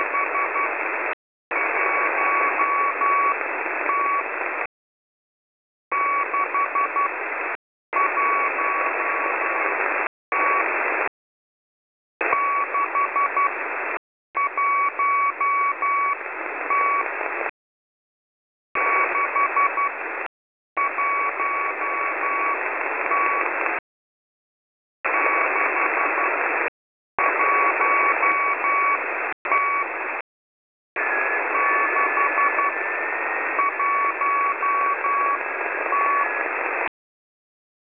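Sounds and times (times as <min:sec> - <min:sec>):
shortwave radio signal at 3180.0 kHz: 0:00.0 - 0:04.7, 0:05.9 - 0:11.1, 0:12.2 - 0:17.5, 0:18.8 - 0:23.8, 0:25.1 - 0:30.2, 0:31.0 - 0:36.9.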